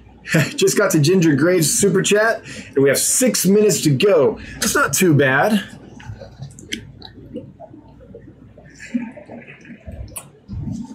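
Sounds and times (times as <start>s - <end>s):
speech: 0.2s - 5.8s
person drinking water: 5.6s - 10.9s
person swallowing: 5.8s - 10.9s.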